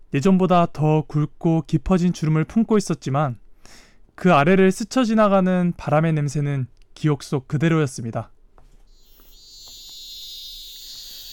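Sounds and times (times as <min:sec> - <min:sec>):
speech: 0:00.1 - 0:08.4
cicadas buzzing: 0:08.9 - 0:11.3.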